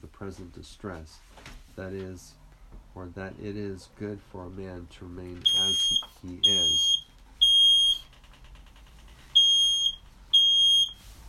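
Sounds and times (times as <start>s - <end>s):
speech: 0.2s - 2.4s, 3.0s - 6.9s
smoke alarm beeping: 5.4s - 8.1s, 9.4s - 11.2s.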